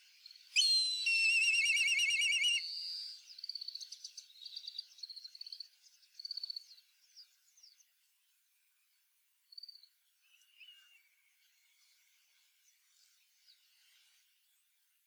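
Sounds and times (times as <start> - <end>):
short thin chirps and trills: 0.6 - 3.1
black kite calling with a high trembling whistle: 0.6 - 3.2.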